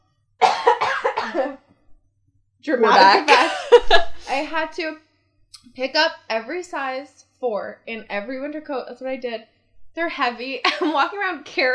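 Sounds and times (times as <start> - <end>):
person coughing: 0.4 - 1.6, 2.9 - 4.3
speech: 2.6 - 11.7
laughter: 2.8 - 4.4, 10.7 - 11.0.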